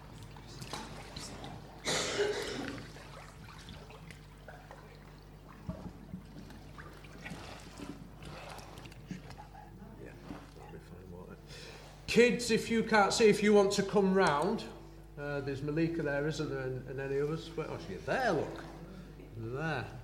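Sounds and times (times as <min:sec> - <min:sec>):
water sloshing and splashing as people step into the water: 0:00.0 - 0:12.1, 0:17.3 - 0:19.1
speech: 0:12.2 - 0:14.8, 0:15.4 - 0:18.7, 0:19.4 - 0:20.0.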